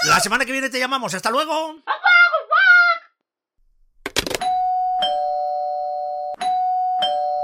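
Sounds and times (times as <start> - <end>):
speech: 0.1 - 2.0
electronic doorbell ringing: 4.4 - 7.4.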